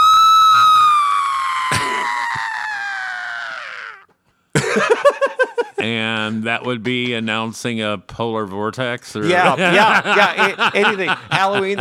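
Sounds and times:
woman letting out a long piercing scream: 0.0 - 4.1
laughter: 4.6 - 7.4, 9.2 - 11.8
speech: 5.9 - 11.8.

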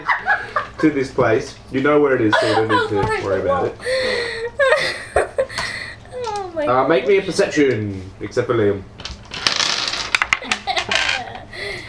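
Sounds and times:
laughter: 0.0 - 1.2, 2.2 - 5.8
speech: 0.8 - 4.2, 6.6 - 8.9
dice clattering across a hard tabletop: 9.0 - 11.8.

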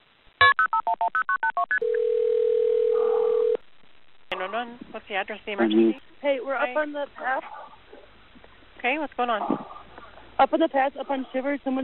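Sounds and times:
speech: 0.7 - 2.1, 4.4 - 7.6, 8.8 - 9.7, 10.4 - 11.8
telephone ringing tone: 0.8 - 3.6.

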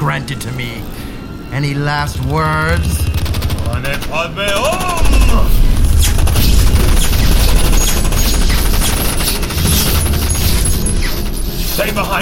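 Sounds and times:
speech: 0.0 - 5.7, 11.8 - 12.1
heavy gunfire: 2.2 - 12.1.

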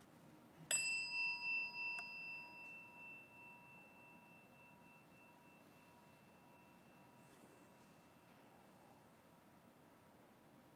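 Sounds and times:
meditation chime ringing: 0.7 - 8.4.

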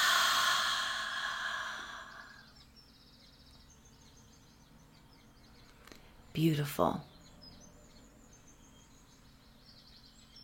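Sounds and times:
slow deep breath released in a long soft exhale: 0.0 - 2.5
speech: 6.4 - 7.1.

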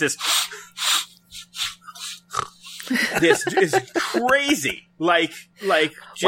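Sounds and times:
speech: 0.0 - 0.9, 2.9 - 6.2
sharp nasal sniffs: 0.0 - 2.8
laughter: 2.8 - 4.8.

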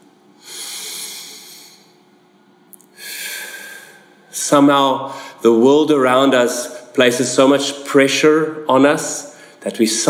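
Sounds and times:
long slow deep breaths: 0.4 - 2.0, 2.9 - 4.3, 5.1 - 5.5, 9.2 - 9.6
speech: 4.4 - 10.0.

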